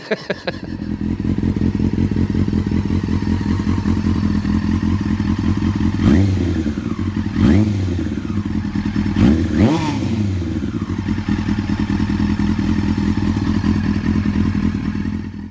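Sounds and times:
laughter: 0:00.0 - 0:01.1
speech: 0:00.1 - 0:02.0
motorcycle engine with original MIG high-mount exhaust idling: 0:00.3 - 0:15.5.

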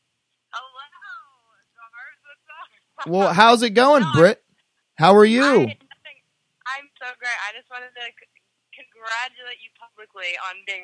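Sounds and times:
speech: 0:03.0 - 0:04.4, 0:05.0 - 0:05.8, 0:09.0 - 0:10.8
voice through a phone speaker on speakerphone: 0:03.0 - 0:04.4, 0:05.0 - 0:05.8.

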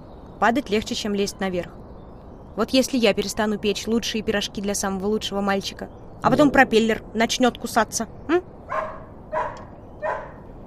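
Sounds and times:
speech: 0:00.4 - 0:01.8, 0:02.6 - 0:08.5
dog barking: 0:08.7 - 0:10.5.

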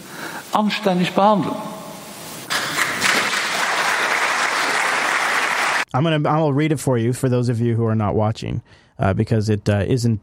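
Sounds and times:
speech: 0:00.5 - 0:01.7, 0:06.0 - 0:10.2
crowd applauding: 0:02.5 - 0:05.9.

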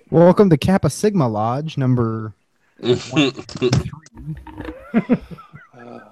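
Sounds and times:
speech: 0:00.1 - 0:06.0
toy monkey giggling and chattering electronically: 0:02.8 - 0:06.0.

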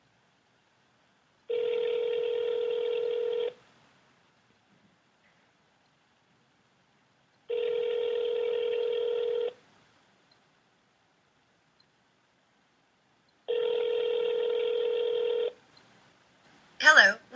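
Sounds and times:
outgoing phone call ringing: 0:01.5 - 0:03.6, 0:07.5 - 0:09.6, 0:13.5 - 0:15.6.

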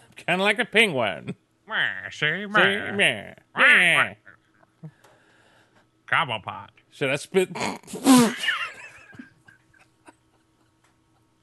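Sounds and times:
speech: 0:00.3 - 0:04.2, 0:06.1 - 0:08.7
person imitating a duck quack: 0:01.7 - 0:04.4.

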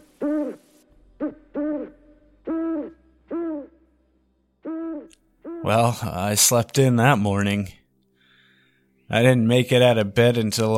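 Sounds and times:
owl hooting: 0:00.0 - 0:04.0, 0:04.6 - 0:06.0
speech: 0:05.6 - 0:07.8, 0:09.1 - 0:10.7.

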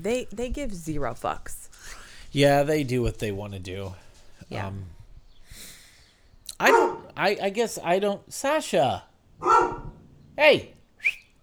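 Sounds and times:
speech: 0:00.0 - 0:05.0, 0:06.6 - 0:09.8, 0:10.4 - 0:11.2
dog barking: 0:06.6 - 0:07.2, 0:09.4 - 0:10.0.

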